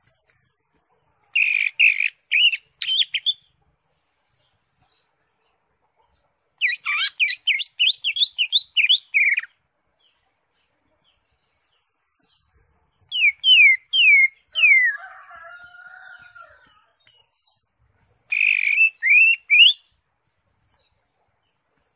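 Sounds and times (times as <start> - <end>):
Greater Green Leafbird whistled song: 1.4 - 3.5, 6.6 - 9.5, 13.1 - 15.0, 18.3 - 20.0.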